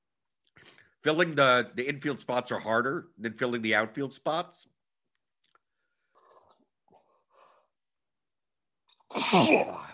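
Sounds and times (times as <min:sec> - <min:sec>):
speech: 0:01.0 - 0:04.7, 0:09.1 - 0:09.9
quiet intake of breath before a sneeze: 0:05.8 - 0:07.8
loud sneeze with sharp hissy onset: 0:09.1 - 0:09.9.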